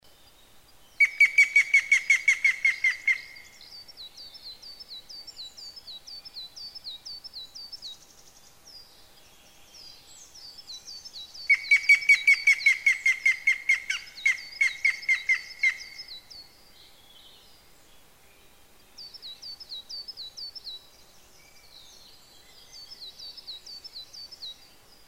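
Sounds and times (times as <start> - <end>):
yamagera bird calling: 1.0 - 3.6, 11.5 - 16.2.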